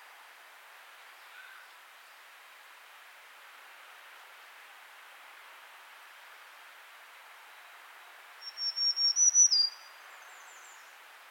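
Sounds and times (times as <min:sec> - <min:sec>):
faint background hiss: 0:00.0 - 0:11.2
Setophaga virens black-throated green warbler buzzy song: 0:08.4 - 0:11.0.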